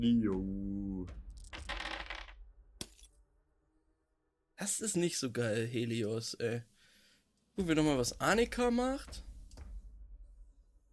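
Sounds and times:
speech: 0:00.0 - 0:01.2, 0:04.6 - 0:06.7, 0:07.6 - 0:09.3
dice rattling in a cup or hand: 0:01.4 - 0:02.4
dice clattering onto a hard surface: 0:01.4 - 0:03.1.

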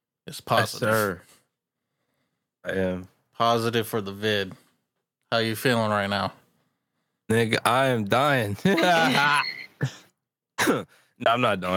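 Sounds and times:
speech: 0:00.3 - 0:01.4, 0:02.6 - 0:04.6, 0:05.3 - 0:06.4, 0:07.3 - 0:10.0, 0:10.6 - 0:11.7
laughter: 0:08.6 - 0:09.7
husky cough from a person who has tested positive for COVID: 0:10.6 - 0:10.9.

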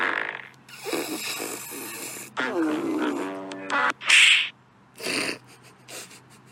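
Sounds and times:
buzzing raspberry wobbling in pitch: 0:00.0 - 0:04.0
silly fart noises: 0:00.0 - 0:04.0.

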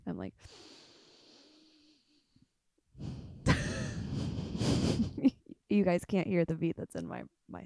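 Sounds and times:
speech: 0:00.2 - 0:00.8, 0:05.2 - 0:07.6
human breathing paced in rhythm to music: 0:00.4 - 0:02.4, 0:03.0 - 0:05.2.

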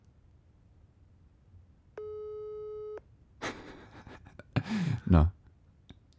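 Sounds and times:
telephone ringback tone on speakerphone: 0:02.0 - 0:03.0
speech: 0:05.1 - 0:05.4.

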